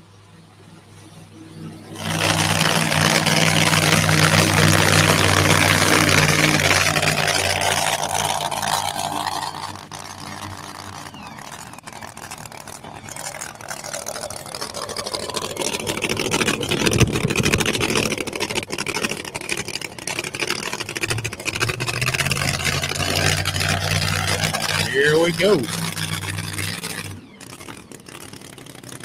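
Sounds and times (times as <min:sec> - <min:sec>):
truck engine idling: 0:01.3 - 0:29.0.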